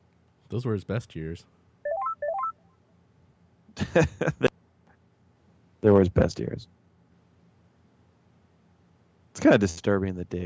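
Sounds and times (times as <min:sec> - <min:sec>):
speech: 0:00.5 - 0:01.6, 0:03.9 - 0:04.5, 0:05.8 - 0:06.8, 0:09.4 - 0:10.4
telephone keypad dialing tones: 0:01.9 - 0:02.5.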